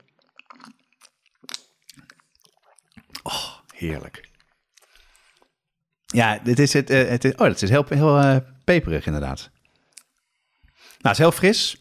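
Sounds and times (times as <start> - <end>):
sipping an iced drink from a large glass: 0.0 - 5.6
speech: 3.8 - 4.3, 6.1 - 9.6, 11.0 - 11.7.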